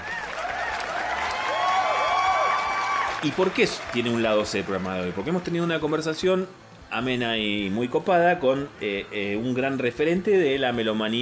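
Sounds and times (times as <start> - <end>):
crowd applauding: 0.0 - 6.4
speech: 3.2 - 11.1.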